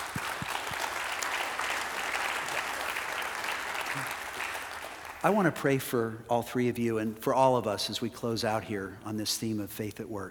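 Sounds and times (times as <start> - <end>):
audience applause at a faith-at-work gathering: 0.0 - 5.3
speech: 5.2 - 10.2.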